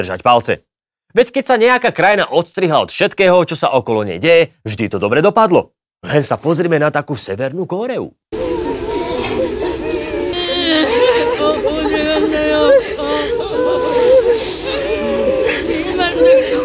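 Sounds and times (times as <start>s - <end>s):
speech: 0.0s - 8.3s
large crowd wailing and sobbing on the street in North Korea mourning the leader's death: 8.3s - 16.6s.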